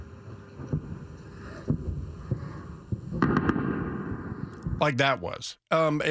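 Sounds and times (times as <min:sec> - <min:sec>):
anti-aircraft rounds exploding in Isfahan: 0:00.8 - 0:04.8
speech: 0:04.8 - 0:06.0.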